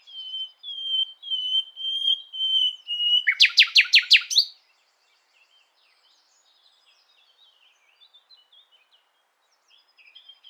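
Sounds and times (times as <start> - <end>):
Common nightingale Luscinia megarhynchos singing: 0.0 - 4.5.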